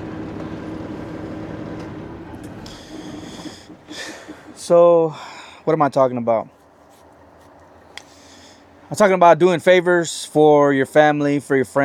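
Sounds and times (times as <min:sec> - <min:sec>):
truck engine idling and being turned off: 0:00.0 - 0:09.2
speech: 0:04.7 - 0:06.6, 0:08.9 - 0:11.8.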